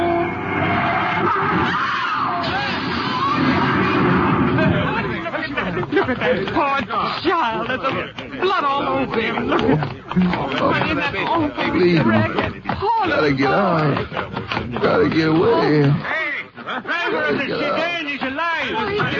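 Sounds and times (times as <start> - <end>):
tires screeching: 0.0 - 4.7
car crash as car from side street is hit: 0.0 - 5.0
agitated voices: 1.0 - 19.1
laughter: 3.4 - 19.1
speech: 6.3 - 16.2, 17.1 - 19.1.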